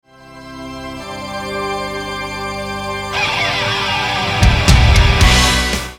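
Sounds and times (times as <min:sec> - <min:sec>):
dirty slide guitar: 0:03.1 - 0:05.9.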